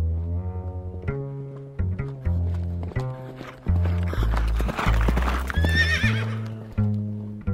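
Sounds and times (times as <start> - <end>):
horse hooves clip-clopping: 0.2 - 7.4
horse neighing: 4.0 - 6.7.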